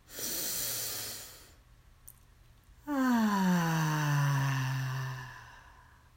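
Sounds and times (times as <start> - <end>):
deep belly breathing: 0.0 - 1.6, 2.8 - 6.1
loud exhale released as a voiced sigh: 2.8 - 6.0.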